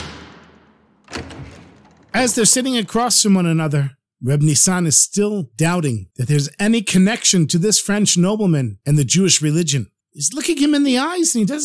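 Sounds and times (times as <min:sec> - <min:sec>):
side room door closing with a thud: 0:00.0 - 0:03.0
speech: 0:02.2 - 0:11.6.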